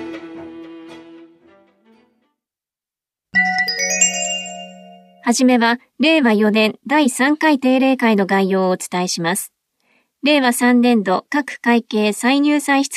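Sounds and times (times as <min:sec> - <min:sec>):
bright electronic tone index chime on a cassette tape: 0:03.3 - 0:05.3
steady clear tone: 0:03.3 - 0:05.9
speech: 0:05.3 - 0:09.5, 0:10.2 - 0:12.9.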